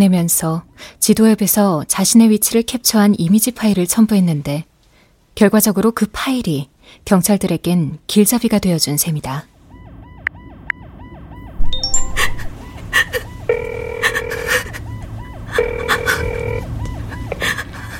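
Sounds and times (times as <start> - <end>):
speech: 0.0 - 4.7, 5.4 - 9.5
short beeps: 11.6 - 12.8
outgoing phone call ringing tone from inside a car: 11.6 - 14.6, 15.6 - 16.7.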